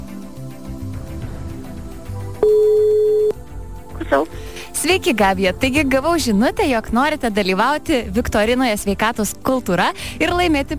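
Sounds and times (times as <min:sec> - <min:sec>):
telephone line ringing after a number is dialed: 0:02.4 - 0:03.4
speech: 0:04.1 - 0:10.7.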